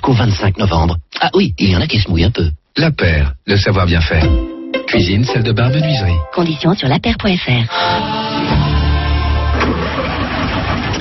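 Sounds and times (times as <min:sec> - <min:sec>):
speech: 0:00.1 - 0:08.7
car engine with a weak battery cranking sluggishly: 0:09.0 - 0:11.0.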